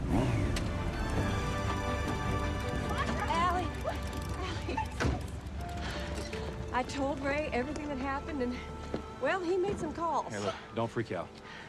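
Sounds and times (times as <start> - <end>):
classic muscle car engine idling and revving: 0.0 - 9.0
speech: 6.8 - 11.4.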